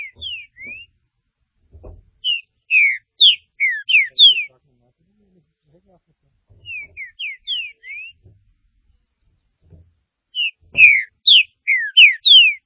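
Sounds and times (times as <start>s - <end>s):
green-winged saltator singing whistled phrases: 0.0s - 1.0s, 2.3s - 4.5s, 6.6s - 8.2s, 10.4s - 12.6s
faint thud: 1.6s - 2.3s, 8.2s - 10.0s.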